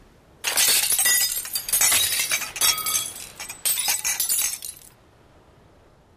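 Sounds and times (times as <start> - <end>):
glass bottles from a beach clinking into a glass recycling bin: 0.4 - 4.9
glass shattering: 0.4 - 4.9.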